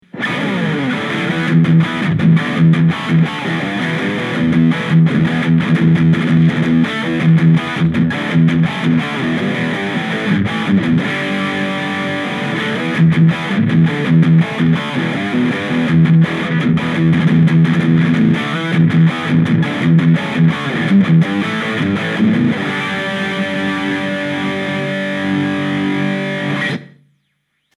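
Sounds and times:
guitar through Blackstar Super Fly lead on humbucker pickup: 0.0 - 27.3.

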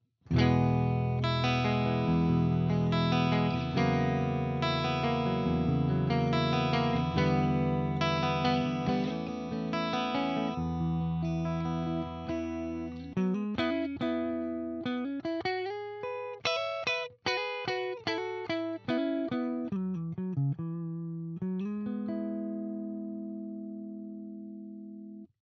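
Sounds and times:
Harley Benton TE 90FLT guitar mid clean tone: 0.3 - 25.3.

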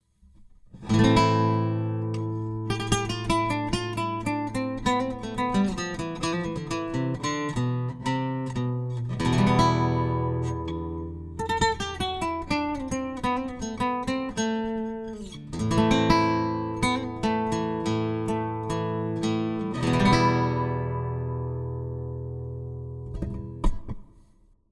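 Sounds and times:
nylon guitar picking through Fishman Aura Spectrum blend with compression: 0.3 - 24.2.

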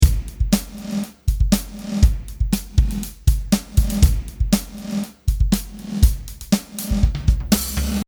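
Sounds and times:
reversed beat: 0.0 - 8.0.

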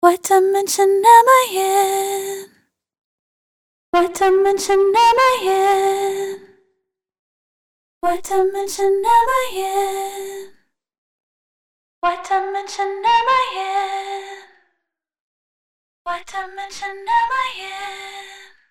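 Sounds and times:
vocals: 0.0 - 2.6, 4.0 - 6.6, 8.0 - 10.6, 12.0 - 14.7, 16.1 - 18.6.

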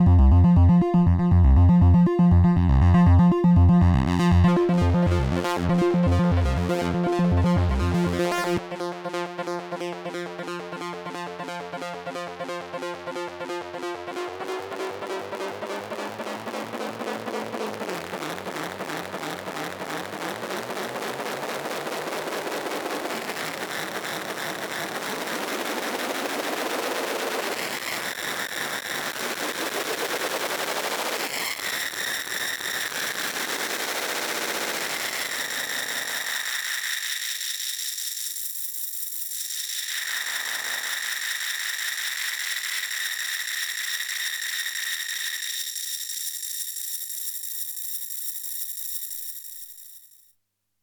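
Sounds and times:
synthesizer freezer effect: 0.0 - 36.8.

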